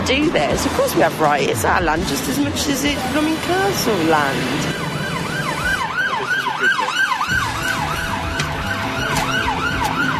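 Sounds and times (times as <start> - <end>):
low rumble of road traffic: 0.0 - 10.1
speech: 0.1 - 5.0
emergency siren wailing in rising-and-falling sweeps: 3.8 - 10.1.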